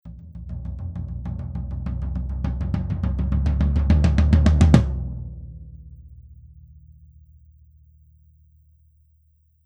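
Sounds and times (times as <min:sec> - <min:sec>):
tom drum roll: 0:00.1 - 0:06.4.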